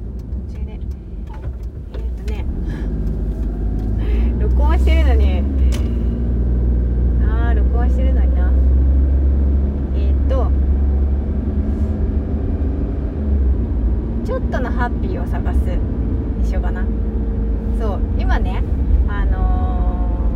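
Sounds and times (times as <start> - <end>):
car engine rumble while driving: 0.0 - 20.3
road noise while driving: 0.0 - 20.3.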